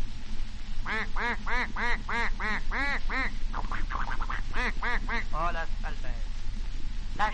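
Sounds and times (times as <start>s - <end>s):
low constant hum: 0.0s - 7.3s
duck quacking: 0.9s - 5.3s
speech: 1.0s - 6.4s.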